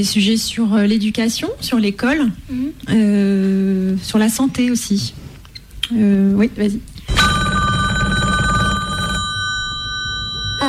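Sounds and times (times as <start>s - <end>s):
speech: 0.0s - 5.2s, 5.9s - 7.2s
telephone ringing with electronic trill: 7.1s - 10.6s.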